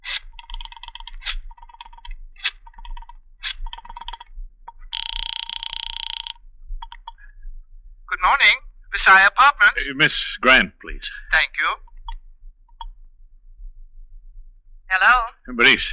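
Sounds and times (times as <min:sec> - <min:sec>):
telephone ringing over the line: 0:04.9 - 0:06.4
speech: 0:08.3 - 0:11.9, 0:14.9 - 0:15.9.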